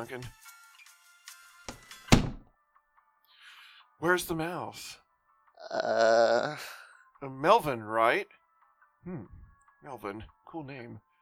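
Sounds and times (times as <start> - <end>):
speech: 0.0 - 0.6, 4.0 - 5.0, 5.6 - 8.4, 9.0 - 11.1
door swinging shut with a heavy thud: 1.7 - 2.5.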